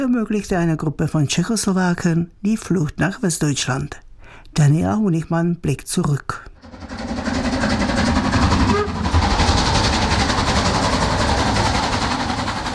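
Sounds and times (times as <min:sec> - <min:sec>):
speech: 0:00.0 - 0:04.0, 0:04.6 - 0:07.1
steam locomotive train clattering on rails: 0:06.6 - 0:12.7.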